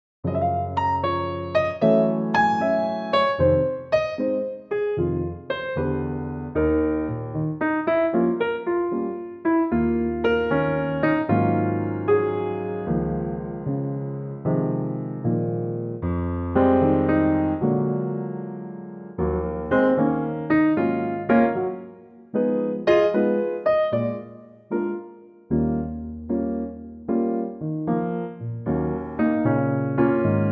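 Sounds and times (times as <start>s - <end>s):
piano in Db: 0.2s - 30.5s.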